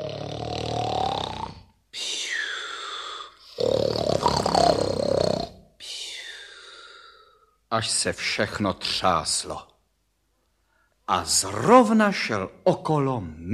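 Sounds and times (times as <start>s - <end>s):
person imitating a wolf's loud exaggerated snoring: 0.0s - 5.6s
speech: 7.8s - 9.7s, 11.1s - 13.5s.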